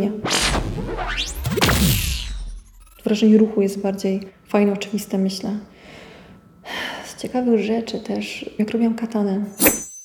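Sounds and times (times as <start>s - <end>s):
fast loud whoosh with Doppler effect: 0.2s - 3.2s
swishing streaks: 0.2s - 3.2s
speech: 3.1s - 5.7s, 7.2s - 9.7s.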